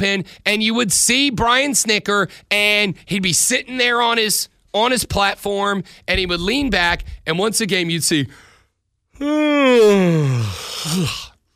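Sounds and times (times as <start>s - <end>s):
speech: 0.0s - 8.5s, 9.2s - 11.2s
man imitating a big exaggerated yawn: 9.2s - 11.4s.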